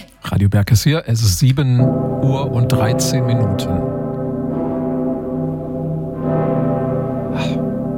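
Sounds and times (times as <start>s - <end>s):
speech: 0.4s - 4.0s
deep heavy bells of a cathedral in Germany ringing: 1.8s - 7.9s.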